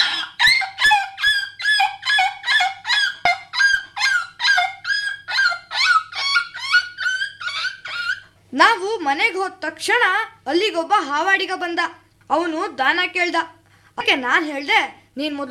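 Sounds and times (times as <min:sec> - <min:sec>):
person imitating puppy yelping in pain after being hit by auto-rickshaw: 0:00.0 - 0:08.3
speech: 0:08.6 - 0:15.4.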